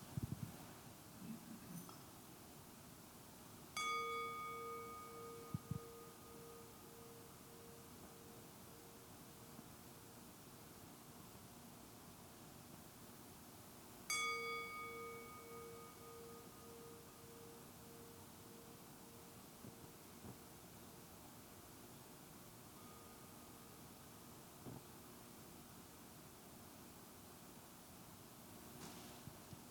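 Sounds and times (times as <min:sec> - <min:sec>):
soft hiss: 0:00.0 - 0:29.6
meditation bell ringing: 0:03.8 - 0:10.2, 0:14.1 - 0:20.2, 0:22.6 - 0:24.3.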